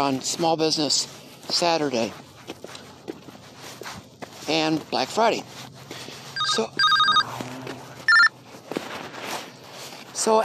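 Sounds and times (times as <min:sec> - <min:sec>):
speech: 0:00.0 - 0:02.8, 0:04.5 - 0:05.7, 0:06.5 - 0:06.9, 0:10.2 - 0:10.4
phone ringing with electronic ringtone: 0:06.4 - 0:07.3, 0:08.1 - 0:08.4.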